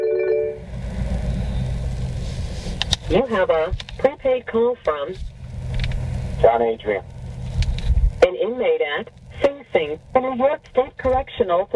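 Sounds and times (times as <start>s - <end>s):
electronic phone ring inside a car: 0.0s - 0.6s
steady low rumble inside a car: 0.5s - 11.7s
speech: 3.1s - 5.3s, 6.4s - 7.1s, 8.3s - 11.7s.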